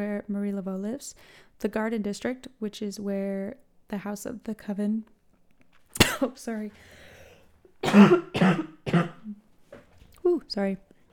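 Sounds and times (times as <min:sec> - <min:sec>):
speech: 0:00.0 - 0:05.2, 0:06.0 - 0:07.0, 0:07.8 - 0:09.4, 0:10.3 - 0:10.9
person coughing in rough throaty bursts: 0:06.0 - 0:06.3, 0:07.8 - 0:09.4
person with a tickle in the throat clearing it: 0:07.8 - 0:09.4.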